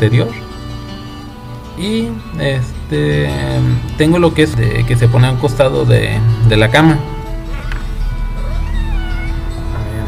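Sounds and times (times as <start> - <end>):
speech: 0.0 - 0.5, 1.8 - 7.2
cat meowing: 8.3 - 9.6.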